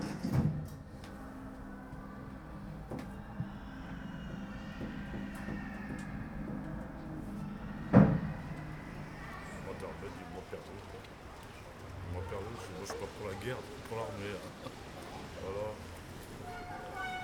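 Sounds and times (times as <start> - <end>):
train rumbling: 0.0 - 17.2
steady low mechanical hum: 0.1 - 11.9
doors thudding shut aboard a train: 2.3 - 9.4.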